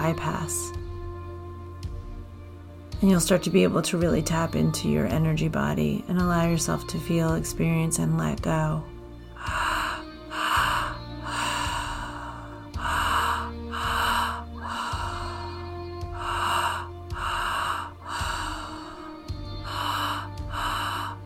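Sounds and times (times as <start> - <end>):
speech: 0.0 - 0.8, 3.0 - 9.7
soft sustained musical drone: 0.0 - 21.2
deep rhythmic breathing during a guided breathing exercise: 8.9 - 21.2.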